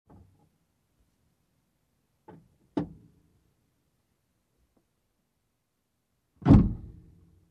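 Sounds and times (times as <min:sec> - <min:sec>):
trunk closing: 0:06.4 - 0:07.0.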